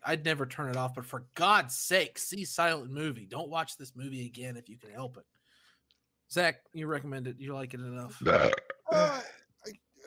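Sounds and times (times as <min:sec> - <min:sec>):
speech: 0:00.0 - 0:05.4, 0:06.3 - 0:10.0
faint vocal sounds: 0:08.1 - 0:09.4
loud resonant burp: 0:08.2 - 0:09.3.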